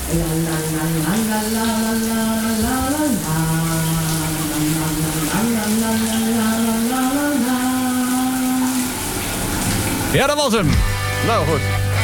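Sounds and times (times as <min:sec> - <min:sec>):
person singing a wobbly sustained melody: 0:00.0 - 0:09.0
shower running with spraying water: 0:00.0 - 0:12.0
speech: 0:00.1 - 0:03.8, 0:10.1 - 0:11.8.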